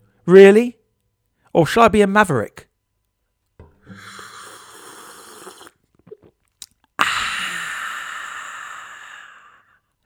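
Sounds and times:
speech: 0.3s - 0.8s, 1.6s - 2.7s
person gulping: 3.6s - 9.5s
person slurping coffee: 3.8s - 7.6s
mouth clicks: 3.9s - 7.8s.

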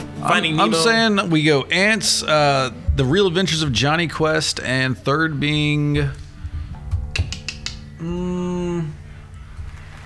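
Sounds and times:
speech: 0.2s - 6.2s, 8.0s - 9.0s
people clapping: 9.5s - 10.0s.

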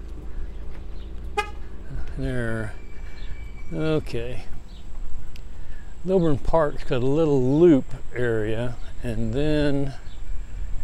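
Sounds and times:
steady low outdoor rumble: 0.0s - 10.8s
car horn chirp when locking car: 1.3s - 1.7s
speech: 2.2s - 2.8s, 3.7s - 4.6s, 6.0s - 10.1s.

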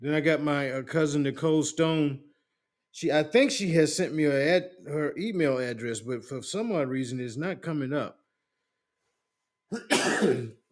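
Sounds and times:
speech: 0.0s - 2.3s, 2.9s - 8.2s, 9.7s - 10.6s
throat clearing from a dry throat: 9.7s - 10.6s.

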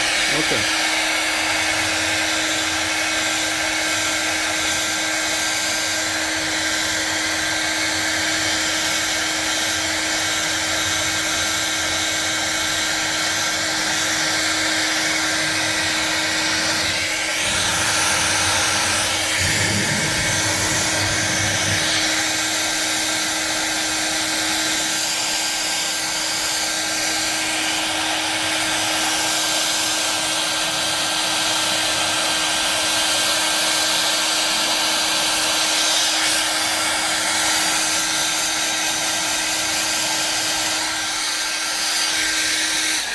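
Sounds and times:
hair dryer blowing on a balloon: 0.0s - 43.1s
speech: 0.4s - 0.8s
balloon fluttering in hair dryer airflow: 16.7s - 22.8s.

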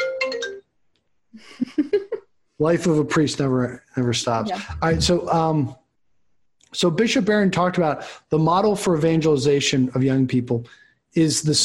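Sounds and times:
telephone ringing with a short melodic ringtone: 0.0s - 0.6s
laughter: 1.4s - 3.2s, 4.5s - 5.5s
speech: 2.6s - 5.8s, 6.8s - 11.6s.

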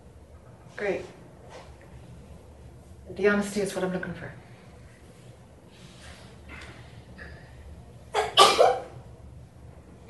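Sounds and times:
speech: 0.8s - 1.2s, 3.1s - 4.4s
sneeze: 8.1s - 9.0s.

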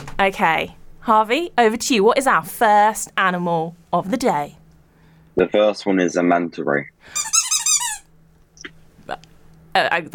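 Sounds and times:
speech: 0.2s - 4.6s, 5.4s - 7.4s, 9.1s - 10.1s
squeaky dog toy used as a quiz game buzzer squeaking: 7.2s - 8.1s.

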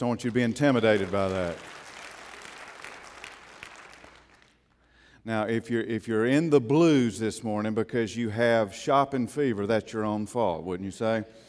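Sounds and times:
speech: 0.0s - 1.7s, 5.2s - 11.4s
audience applauding: 0.0s - 4.6s.

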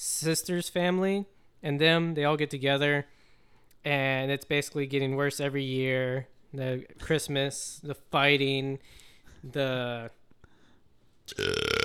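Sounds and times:
speech: 0.0s - 3.2s, 3.8s - 10.2s, 11.3s - 11.7s
quiet breath: 3.1s - 3.8s, 8.8s - 9.5s, 10.4s - 11.1s
loud drawn-out burp: 11.3s - 11.8s.

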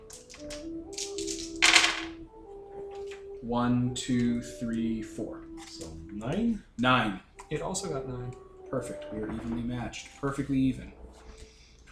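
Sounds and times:
six dice clattering on a hard surface: 0.1s - 2.1s
speech: 3.4s - 11.0s.

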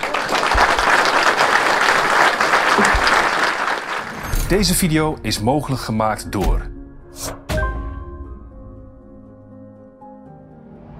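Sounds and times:
sizable crowd applauding: 0.0s - 4.4s
speech: 4.5s - 7.3s.

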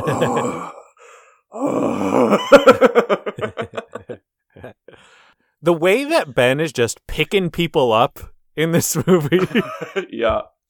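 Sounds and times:
speech: 0.0s - 0.8s, 1.5s - 3.2s, 5.6s - 10.6s
human voice imitating a creature's heavy breathing: 0.0s - 2.4s
laughter: 2.4s - 4.8s, 8.9s - 10.1s.

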